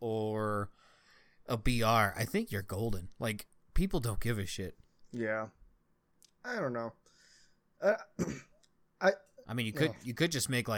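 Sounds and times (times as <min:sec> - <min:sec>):
speech: 0:01.5 - 0:05.6, 0:06.4 - 0:07.0, 0:07.8 - 0:10.7
coughing and throat clearing: 0:07.8 - 0:08.7.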